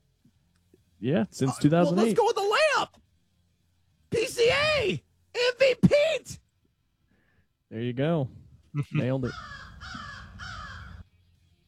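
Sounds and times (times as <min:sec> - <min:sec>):
speech: 0:01.0 - 0:03.0, 0:04.2 - 0:06.4, 0:07.7 - 0:10.0
crow cawing with harsh raspy calls: 0:09.2 - 0:11.1.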